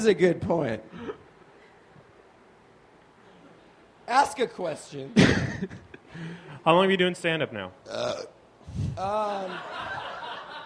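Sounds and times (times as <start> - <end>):
speech: 0.0 - 1.0, 4.1 - 10.0
short low guttural burp: 7.9 - 8.4
scattered laughter: 9.3 - 10.6.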